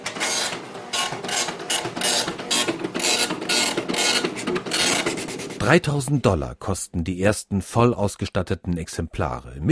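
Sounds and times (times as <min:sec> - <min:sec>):
Epson dot-matrix printer for IBM Personal Computer 5150 printing: 0:00.0 - 0:05.6
speech: 0:05.6 - 0:09.6.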